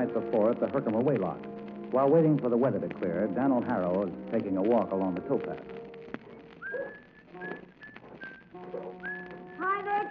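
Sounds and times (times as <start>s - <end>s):
speech: 0.0s - 5.8s
person whistling on the deck of a canal boat at a lock: 6.6s - 9.6s.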